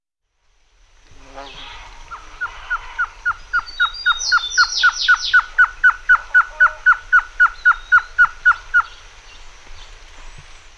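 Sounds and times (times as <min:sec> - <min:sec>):
black-fronted nunbird calls in the Pantanal: 0:01.5 - 0:09.0.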